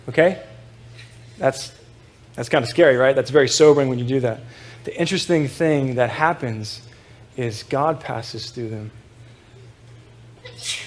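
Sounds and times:
speech: 0.0 - 0.5, 1.4 - 1.8, 2.4 - 9.0
steady low hum: 0.0 - 10.8
sneeze: 10.5 - 10.8.

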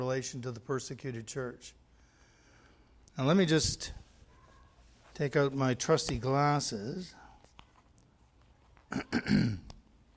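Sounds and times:
speech: 0.0 - 1.8, 3.2 - 4.0, 5.2 - 7.2, 8.9 - 9.7
man clearing his throat: 8.9 - 9.8.

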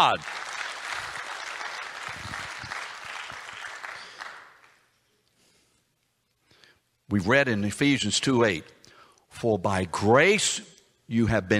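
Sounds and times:
speech: 0.0 - 0.4, 7.1 - 11.5
congregation applauding: 0.0 - 4.9.

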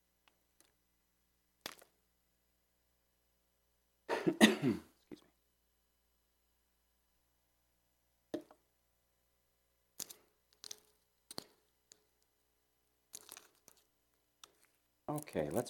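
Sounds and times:
person coughing: 4.1 - 5.2
throat clearing: 4.1 - 5.3
speech: 15.2 - 15.6.

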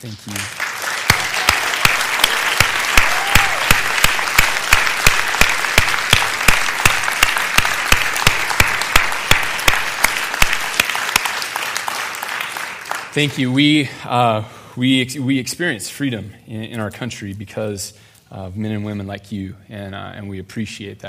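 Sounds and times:
speech: 0.0 - 0.6, 13.2 - 21.0
large audience applauding veterans: 0.2 - 13.4.

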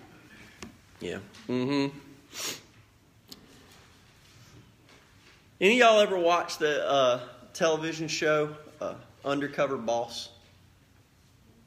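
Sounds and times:
speech: 1.0 - 2.6, 5.6 - 10.4
nasal sniff from a cold: 2.2 - 2.8.

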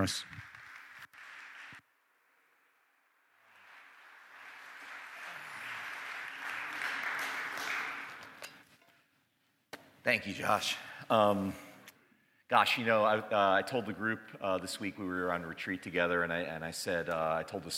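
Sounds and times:
speech: 0.0 - 0.4, 10.0 - 11.6, 12.5 - 17.7
room full of people applauding: 0.0 - 1.8, 3.3 - 8.5.

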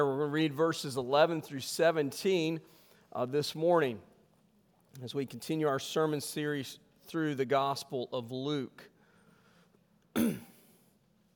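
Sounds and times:
speech: 0.0 - 4.1, 5.0 - 8.9, 10.1 - 10.5
sharp cough after water went down the wrong way: 10.1 - 10.8.

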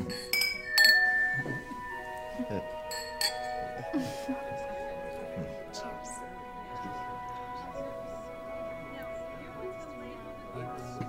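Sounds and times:
glasses clinking in a toast: 0.0 - 4.0
murmur of voices: 3.6 - 11.0.

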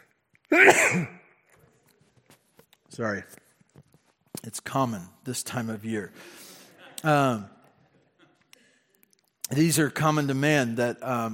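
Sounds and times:
person sneezing: 0.5 - 1.2
speech: 0.5 - 1.2, 3.0 - 3.4, 4.4 - 7.6, 9.5 - 11.3.

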